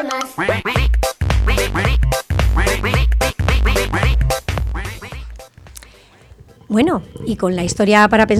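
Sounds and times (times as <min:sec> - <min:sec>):
duck quacking: 0:00.2 - 0:06.8
speech: 0:06.8 - 0:08.3.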